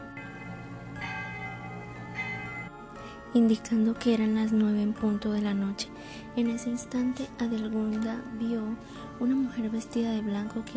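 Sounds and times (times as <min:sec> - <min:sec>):
church bells ringing: 0:00.0 - 0:04.4
speech: 0:03.3 - 0:10.7.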